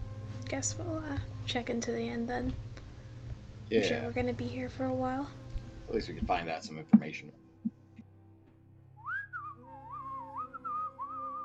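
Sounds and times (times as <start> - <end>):
low steady hum: 0.0 - 8.3
speech: 0.5 - 2.7, 3.7 - 7.4
constable whistling a wavering little melody: 9.0 - 11.4.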